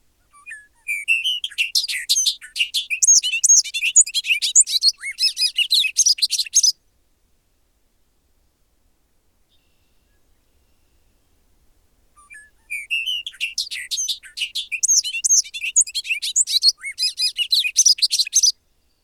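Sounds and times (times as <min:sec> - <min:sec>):
bobolink bubbling song: 0:00.3 - 0:06.7, 0:12.2 - 0:18.5.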